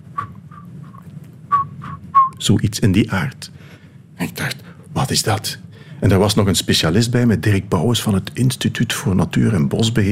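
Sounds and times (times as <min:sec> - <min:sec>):
person whistling short high chirping notes mimicking a frog's call: 0:00.0 - 0:02.4
low hum: 0:00.0 - 0:10.1
speech: 0:02.4 - 0:10.1.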